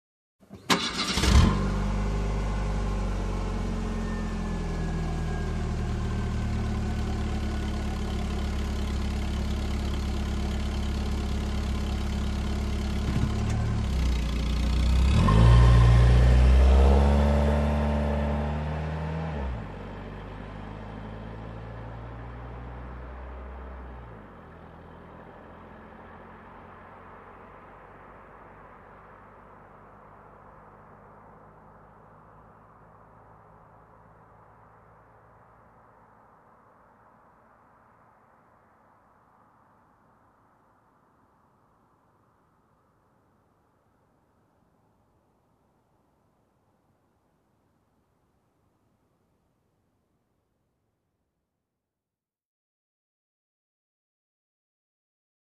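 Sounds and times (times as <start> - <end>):
car engine starting: 0.5 - 34.5.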